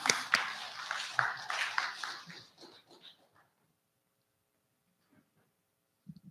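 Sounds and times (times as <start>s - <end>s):
audience clapping: 0.0s - 2.8s.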